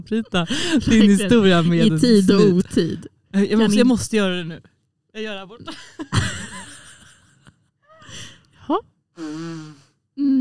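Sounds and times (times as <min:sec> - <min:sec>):
speech: 0:00.0 - 0:06.3, 0:08.1 - 0:10.4
person blowing their nose: 0:09.2 - 0:09.9.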